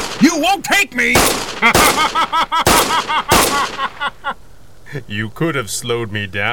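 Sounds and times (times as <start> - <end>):
gunshots with tail: 0.0 - 4.2
speech: 0.2 - 6.5
laughter: 1.6 - 5.0.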